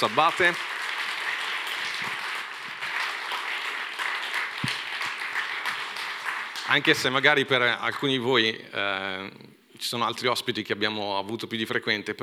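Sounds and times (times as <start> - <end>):
speech: 0.0 - 0.8, 6.7 - 12.2
crowd applauding a speaker: 0.0 - 7.4.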